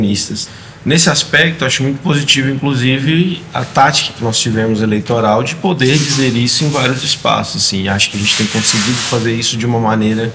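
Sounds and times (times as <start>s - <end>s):
speech: 0.0s - 10.3s
packing tape pulled off a roll: 5.9s - 7.0s, 8.1s - 9.4s.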